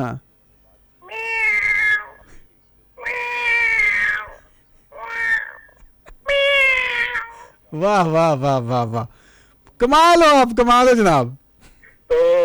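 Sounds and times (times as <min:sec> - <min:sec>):
speech: 0:00.0 - 0:00.3, 0:07.7 - 0:09.2, 0:09.8 - 0:11.4, 0:12.1 - 0:12.4
voice imitating a hungry cat meowing: 0:01.0 - 0:02.3, 0:03.0 - 0:04.4, 0:05.0 - 0:05.7, 0:06.3 - 0:07.5.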